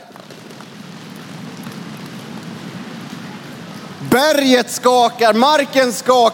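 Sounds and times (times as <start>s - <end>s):
crowd in a hall drumming hands on surfaces imitating galloping horses: 0.0s - 4.0s
speech: 4.0s - 6.3s.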